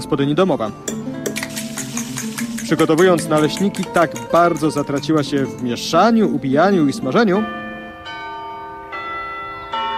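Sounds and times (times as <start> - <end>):
speech: 0.0 - 1.0, 2.7 - 7.6
local church bells ringing: 2.6 - 9.9.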